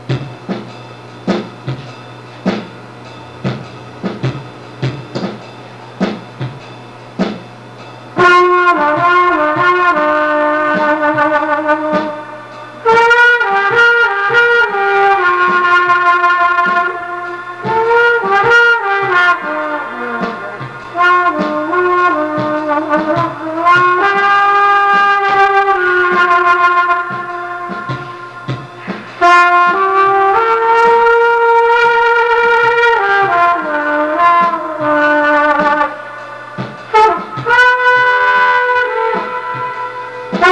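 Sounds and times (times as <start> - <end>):
blowing: 0.0 - 40.5.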